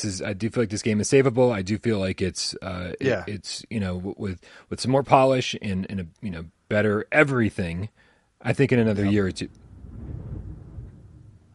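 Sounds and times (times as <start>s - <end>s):
speech: 0.0s - 9.6s
deep rolling thunder: 9.5s - 11.5s.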